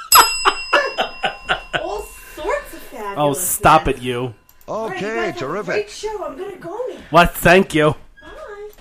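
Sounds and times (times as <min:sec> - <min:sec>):
rhythmic bursting laughter: 0:00.0 - 0:02.4
bell ringing with bright tones: 0:00.0 - 0:06.6
speech: 0:03.0 - 0:08.0.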